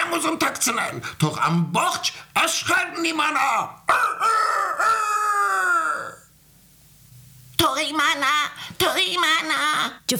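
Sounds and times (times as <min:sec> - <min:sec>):
speech: 0:00.1 - 0:05.0, 0:07.6 - 0:10.1
rooster crowing: 0:03.9 - 0:06.3.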